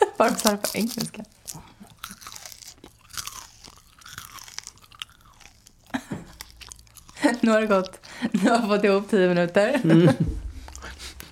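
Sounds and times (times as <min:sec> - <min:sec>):
crunching and chewing a rice cake: 0:00.1 - 0:08.6
speech: 0:00.2 - 0:01.7, 0:07.4 - 0:10.4
laughter: 0:09.6 - 0:11.2.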